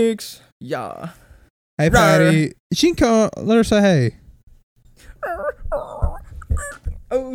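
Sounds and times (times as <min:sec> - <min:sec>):
speech: 0:00.0 - 0:01.2, 0:01.8 - 0:04.2, 0:05.2 - 0:07.3
dog whimpering: 0:05.2 - 0:06.9.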